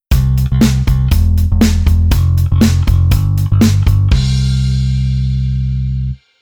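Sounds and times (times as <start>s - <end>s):
bass rhythm arrangement: 0.0s - 6.2s
kick drum: 0.1s - 4.6s.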